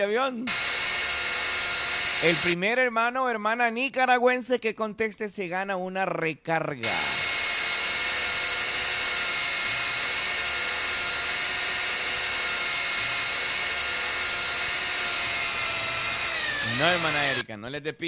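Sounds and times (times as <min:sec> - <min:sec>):
speech: 0:00.0 - 0:00.7, 0:02.2 - 0:07.1, 0:16.8 - 0:18.0
power drill running: 0:00.5 - 0:02.6, 0:06.8 - 0:17.4.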